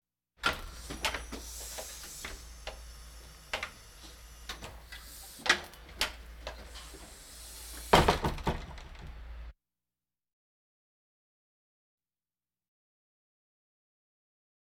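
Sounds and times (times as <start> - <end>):
hospital ambience: 0.4 - 9.5.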